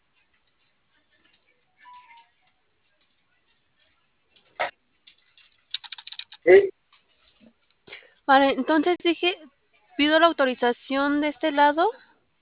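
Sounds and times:
typing on a computer keyboard: 5.1s - 6.5s
speech: 6.5s - 6.7s, 8.3s - 12.0s.

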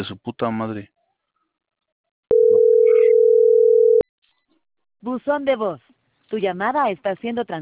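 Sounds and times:
speech: 0.0s - 1.0s, 5.0s - 7.6s
telephone ringback tone: 2.3s - 4.0s.

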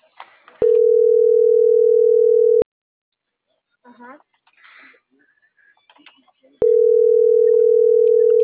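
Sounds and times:
steady telephone line tone: 0.6s - 2.6s, 6.6s - 8.4s.

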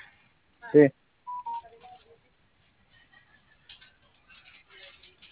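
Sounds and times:
speech: 0.7s - 1.0s
telephone keypad tones as a number is dialed: 1.3s - 2.1s.

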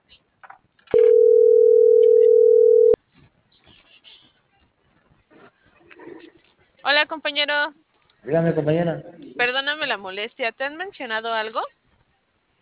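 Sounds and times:
telephone tone after a call is ended: 0.9s - 3.0s
speech: 7.0s - 11.8s.

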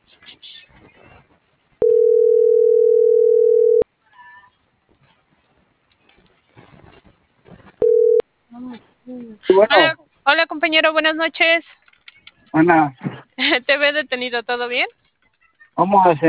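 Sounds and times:
faint noise: 0.0s - 16.2s
phone ringback tone while placing a call: 1.8s - 3.8s, 7.8s - 8.2s
speech: 9.7s - 11.8s, 12.5s - 15.0s, 15.8s - 16.2s.

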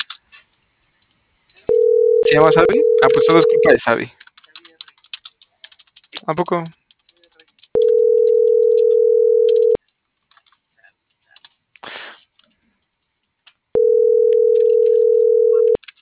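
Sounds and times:
telephone tones while placing a call: 1.7s - 3.7s, 7.8s - 9.8s, 13.8s - 15.8s
speech: 2.3s - 4.2s, 6.3s - 6.8s.

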